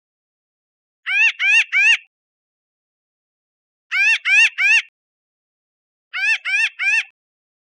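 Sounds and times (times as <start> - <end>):
pinyon jay calls: 1.1 - 2.1, 3.9 - 4.9, 6.2 - 7.2.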